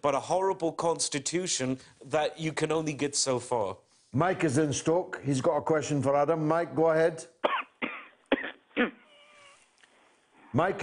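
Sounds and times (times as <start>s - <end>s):
speech: 0.0s - 7.3s, 10.6s - 10.8s
coughing on a telephone line: 7.4s - 9.1s.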